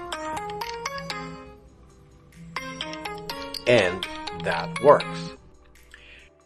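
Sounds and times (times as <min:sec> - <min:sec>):
melodic phone ringtone for an incoming call to a virtual phone number: 0:00.0 - 0:01.8, 0:02.4 - 0:05.4
speech: 0:03.7 - 0:05.4.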